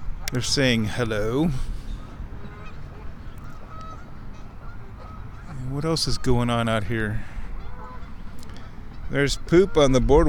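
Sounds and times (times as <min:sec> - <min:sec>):
geese honking: 0:00.2 - 0:10.2
speech: 0:00.3 - 0:01.8, 0:05.7 - 0:07.3, 0:09.1 - 0:10.2.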